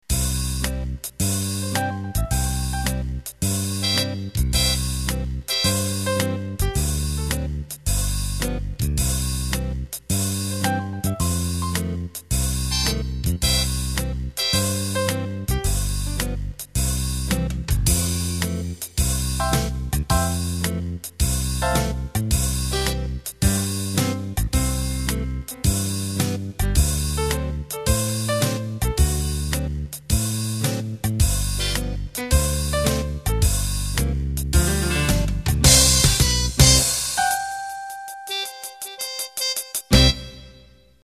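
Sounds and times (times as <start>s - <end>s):
acoustic piano playing a fox trot: 0.6s - 41.0s
muted brass playing a fox trot: 3.8s - 4.8s, 38.3s - 40.8s.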